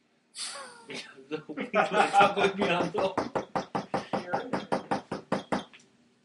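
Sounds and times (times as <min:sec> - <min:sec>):
speech: 0:00.9 - 0:03.5
laughter: 0:01.0 - 0:03.5
knocking on a door: 0:02.7 - 0:05.7.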